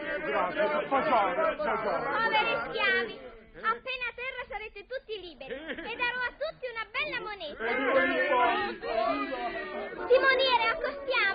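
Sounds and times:
crowd shouting and cheering festively: 0.0s - 3.2s, 7.6s - 11.3s
speech: 0.2s - 11.3s.

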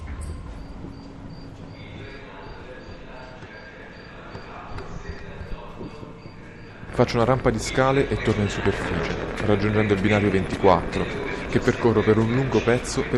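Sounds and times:
constant low rumble and hum of an echoey indoor space: 0.0s - 13.1s
crickets chirping in a quiet station corridor: 0.0s - 13.1s
speech: 7.0s - 13.1s.

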